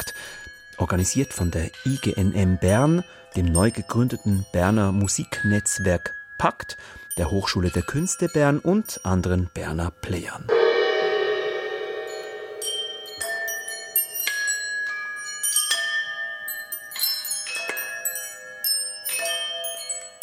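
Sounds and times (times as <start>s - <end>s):
bright bells ringing in a contemporary music piece: 0.0s - 9.4s, 10.5s - 20.2s
speech: 0.8s - 10.6s.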